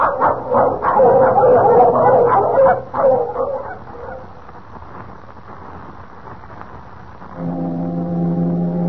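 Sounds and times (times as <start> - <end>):
dog barking excitedly: 0.0 - 4.3
ship's foghorn blowing: 7.4 - 8.8.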